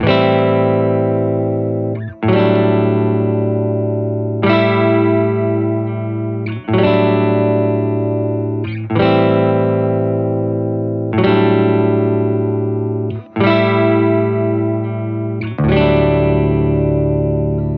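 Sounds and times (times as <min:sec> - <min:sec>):
lazy ballad music: 0:00.0 - 0:17.7.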